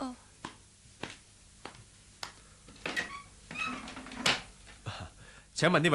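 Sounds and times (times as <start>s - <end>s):
door creaking and rattling as it swings open: 2.7s - 4.6s
speech: 5.6s - 5.9s.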